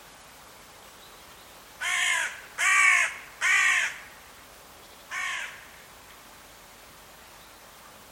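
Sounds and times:
bird harsh cawing: 1.8 - 4.2, 5.1 - 5.8.

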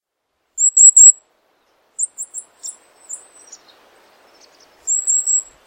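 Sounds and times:
high bird chirps: 0.6 - 1.2, 2.0 - 5.5.

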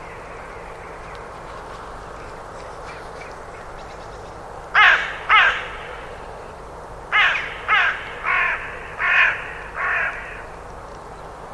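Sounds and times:
bird uttering harsh hoarse caws: 4.7 - 10.6.

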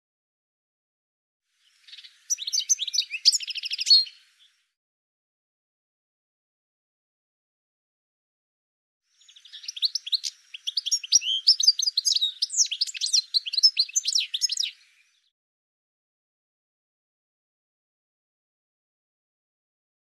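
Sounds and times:
bird twittering chirps: 1.6 - 4.6, 9.1 - 15.3.

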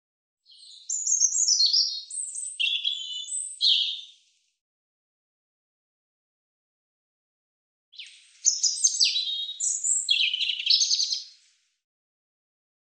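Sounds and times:
European robin singing twitters, whistles and trills: 0.4 - 4.2, 8.0 - 11.4.

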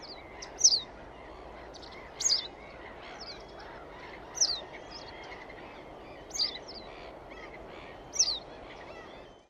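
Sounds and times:
bird chirping: 0.0 - 9.4
constant background noise: 0.0 - 9.4.

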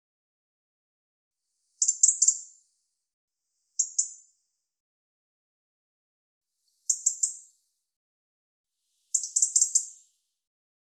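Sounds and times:
European robin giving thin very high ticking notes: 1.8 - 2.5, 3.8 - 4.2, 6.9 - 7.4, 9.1 - 10.0.

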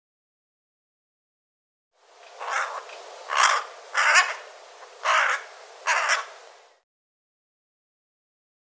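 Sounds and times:
faint hiss: 2.0 - 6.8
bird cawing: 2.3 - 6.4.

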